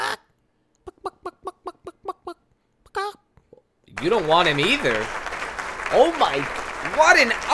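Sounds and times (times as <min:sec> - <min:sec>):
chicken clucking and squawking: 0:00.8 - 0:03.2
speech: 0:04.0 - 0:05.2, 0:05.9 - 0:07.5.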